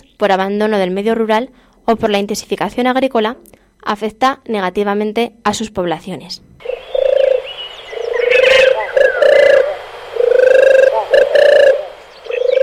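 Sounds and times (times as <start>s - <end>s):
speech: 0.2s - 7.0s
European turtle dove Streptopelia turtur singing a purring trill: 6.6s - 12.6s
bird chirps: 6.6s - 12.6s.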